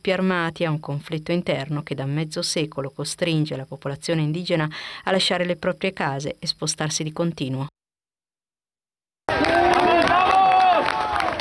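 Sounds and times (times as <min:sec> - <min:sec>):
speech: 0:00.0 - 0:07.8
crowd applauding rescuers: 0:09.3 - 0:11.3.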